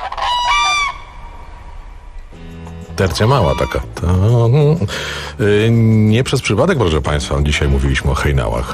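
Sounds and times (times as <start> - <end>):
common cranes trumpeting calls: 0.0 - 2.4, 3.1 - 4.0
speech: 3.0 - 8.7.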